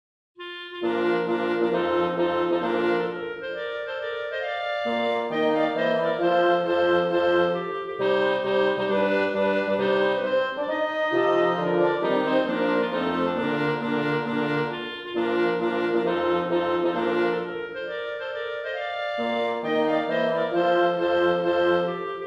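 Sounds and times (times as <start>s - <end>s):
march for two clarinets two horns and two bassoons: 0.4s - 22.2s.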